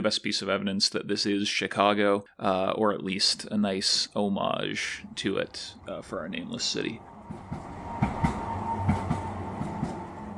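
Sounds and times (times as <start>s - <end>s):
speech: 0.0s - 7.7s
elevated L train passing: 4.8s - 10.3s
L train wheels clacking over rail joints: 7.3s - 10.2s.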